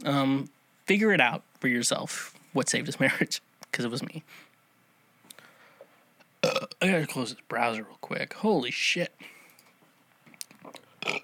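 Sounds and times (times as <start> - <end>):
speech: 0.0 - 4.5, 6.4 - 9.4
guttural throat noises: 6.4 - 6.8, 10.6 - 11.2
person burping: 6.4 - 6.8, 11.0 - 11.2.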